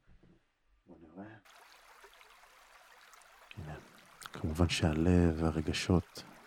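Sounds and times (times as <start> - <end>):
stream flowing as for a meditation: 1.4 - 6.4
speech: 4.4 - 6.3.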